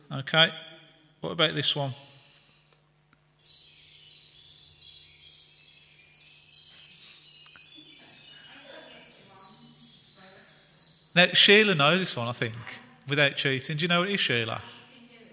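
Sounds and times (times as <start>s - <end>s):
faint birdsong: 0.0s - 13.0s
speech: 0.2s - 2.1s, 11.2s - 14.8s
chiffchaff singing repeated two-tone notes: 3.4s - 12.2s.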